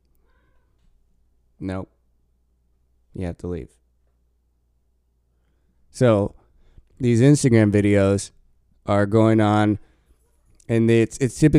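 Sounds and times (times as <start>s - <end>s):
cat meowing: 0.2s - 0.8s
speech: 1.6s - 2.0s, 3.1s - 3.8s, 5.9s - 6.4s, 7.0s - 9.9s, 10.7s - 11.5s.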